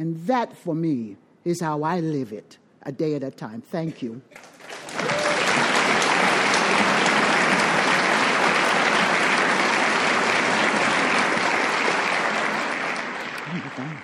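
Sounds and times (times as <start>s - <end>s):
speech: 0.0s - 5.2s
audience applause with many hands clapping: 4.4s - 14.0s.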